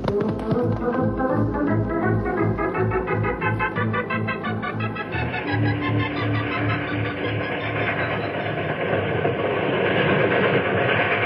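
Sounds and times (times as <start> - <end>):
steam train rumbling along the tracks with wheels clacking: 0.0 - 5.5, 6.2 - 11.2
hissing steam of a steam train: 7.3 - 11.2.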